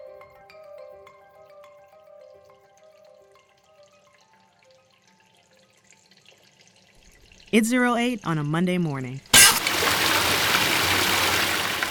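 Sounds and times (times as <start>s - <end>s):
speech: 7.5s - 9.3s
water gushing from a broken water main: 9.3s - 11.9s.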